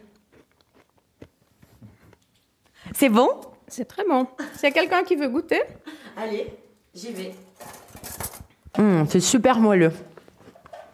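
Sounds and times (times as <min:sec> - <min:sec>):
chewing a crunchy meringue and cream dessert: 0:00.0 - 0:02.6
speech: 0:02.9 - 0:07.4, 0:09.0 - 0:10.1.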